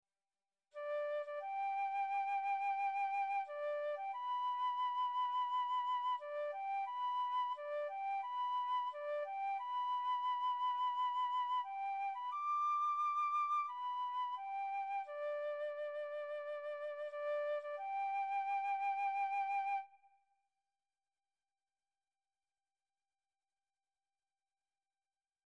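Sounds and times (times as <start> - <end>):
tin whistle playing a bugle call: 0.8 - 20.1.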